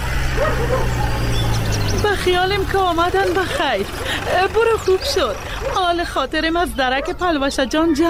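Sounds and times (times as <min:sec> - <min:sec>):
dog barking: 0:00.2 - 0:01.7, 0:04.8 - 0:06.0, 0:06.9 - 0:07.3
speech: 0:02.2 - 0:08.0.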